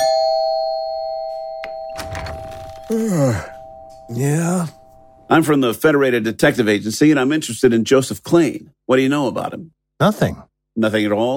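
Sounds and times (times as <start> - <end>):
apartment doorbell ringing in a long steady electric tone: 0.0 - 5.4
speech: 2.9 - 3.5, 4.1 - 11.3
person calling out: 2.9 - 4.7.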